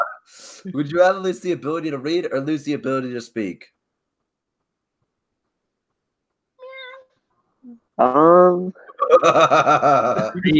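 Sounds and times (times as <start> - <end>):
speech: 0.3 - 3.8, 7.6 - 10.5
person imitating a cat meowing: 6.6 - 7.0
laughter: 9.0 - 10.5.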